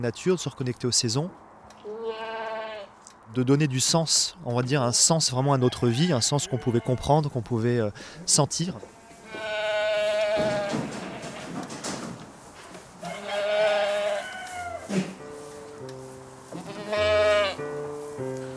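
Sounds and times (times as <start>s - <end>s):
speech: 0.0s - 1.5s, 3.3s - 9.5s
goat bleating: 1.8s - 3.0s, 6.1s - 7.1s, 8.8s - 11.5s, 13.0s - 14.9s, 16.5s - 17.6s
soft sustained musical tones: 15.2s - 18.5s.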